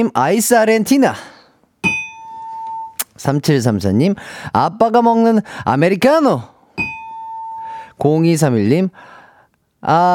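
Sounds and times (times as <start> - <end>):
speech: 0.0 - 1.3, 3.2 - 6.5, 8.0 - 9.1, 9.8 - 10.1
quiz show wrong-answer bell ding: 1.8 - 3.0, 6.8 - 7.6.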